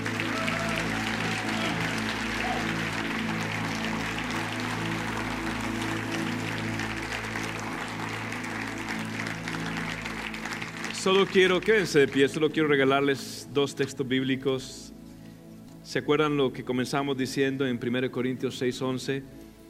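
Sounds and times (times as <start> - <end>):
audience applauding: 0.0 - 12.4
sustained low musical tones: 0.0 - 19.6
speech: 11.0 - 14.8, 15.9 - 19.4.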